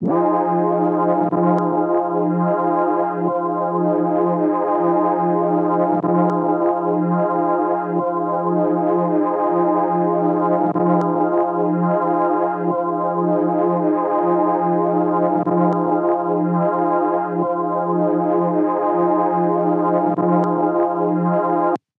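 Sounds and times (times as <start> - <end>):
tape loop synth pad in F minor seventh: 0.0 - 21.8.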